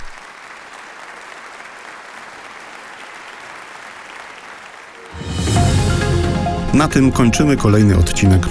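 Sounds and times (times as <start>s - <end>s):
crowd applauding: 0.0s - 6.3s
burst of music: 5.0s - 8.4s
speech: 6.8s - 8.4s.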